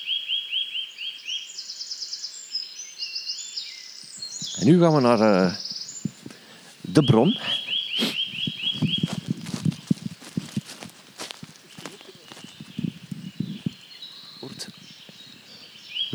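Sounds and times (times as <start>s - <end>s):
Eurasian nuthatch calling: 3.6s - 16.1s
crunching footsteps: 4.2s - 16.1s
speech: 4.6s - 5.6s, 7.0s - 7.6s.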